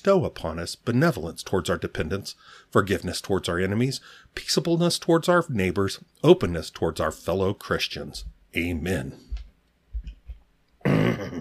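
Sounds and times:
speech: 0.0s - 9.3s
person clearing throat with a frog in their throat: 10.8s - 11.3s.

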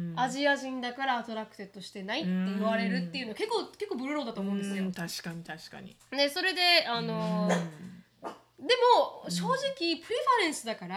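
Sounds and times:
speech: 0.2s - 10.9s
dog barking in short sharp whiny yaps: 7.5s - 8.5s.

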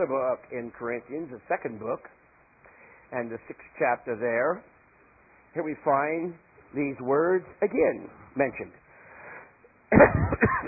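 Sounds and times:
speech: 0.0s - 2.2s, 3.1s - 4.7s, 5.5s - 8.8s, 9.9s - 10.6s
man coughing: 9.9s - 10.6s.

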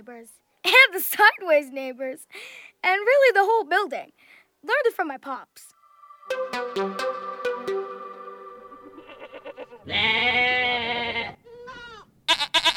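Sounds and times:
speech: 0.0s - 5.7s, 6.3s - 7.4s, 9.6s - 10.7s
goat bleating: 9.2s - 12.7s.

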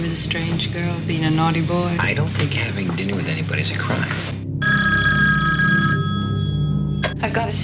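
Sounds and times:
speech: 0.2s - 4.3s, 7.2s - 7.6s
telephone bell ringing with a bright metallic trill: 4.6s - 7.2s.

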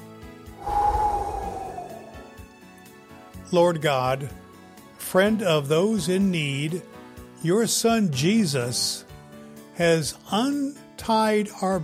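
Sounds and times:
deep breath inhale during a breath prayer: 0.6s - 2.4s
speech: 3.5s - 4.4s, 5.1s - 9.1s, 9.8s - 11.8s.

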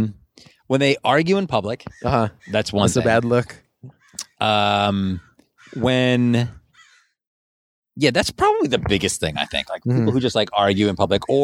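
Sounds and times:
speech: 0.0s - 6.6s, 8.0s - 11.4s
crow cawing: 1.9s - 2.8s, 5.1s - 5.9s, 6.7s - 7.2s.

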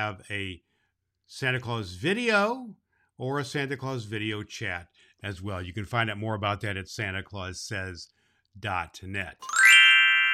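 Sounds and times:
speech: 0.0s - 0.7s, 1.3s - 9.6s
glockenspiel chimes: 9.4s - 10.3s.

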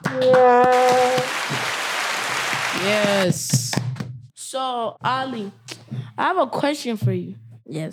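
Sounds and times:
sustained high voice or cheer: 0.0s - 1.4s
steady evenly spaced hand claps: 0.0s - 4.1s
speech: 0.1s - 0.9s, 2.8s - 3.6s, 4.6s - 7.9s.

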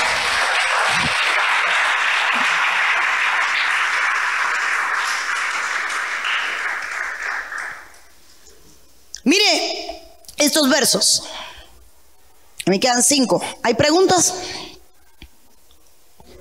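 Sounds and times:
crowd applauding loudly: 0.0s - 8.2s
speech: 10.7s - 11.5s, 12.7s - 14.6s.

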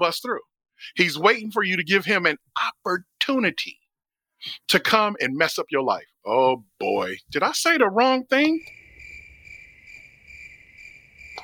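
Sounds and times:
speech: 0.0s - 3.8s, 4.4s - 8.8s
crickets chirping in a steady high-pitched trill: 8.6s - 11.4s.

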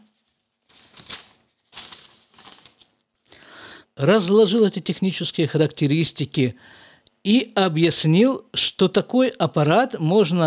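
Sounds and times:
paper letter page being turned: 0.0s - 3.2s
speech: 4.0s - 10.4s.

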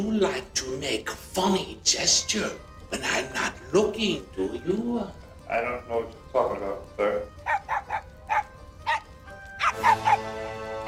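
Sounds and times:
speech: 0.0s - 7.6s, 9.8s - 10.6s
laughter: 2.9s - 3.8s
dog barking: 7.4s - 10.8s.

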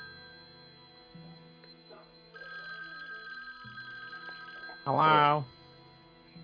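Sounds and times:
telephone ringing with an electronic ringtone: 0.0s - 6.4s
speech: 4.9s - 5.6s.

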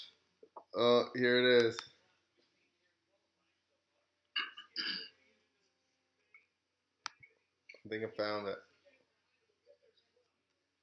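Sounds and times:
speech: 0.7s - 1.9s, 7.9s - 8.7s
rough throat-clearing coughs: 4.4s - 5.2s.

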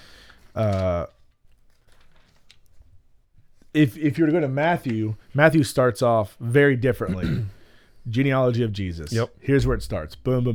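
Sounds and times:
speech: 0.6s - 1.1s, 3.8s - 10.5s
book pages turning: 0.6s - 2.7s.

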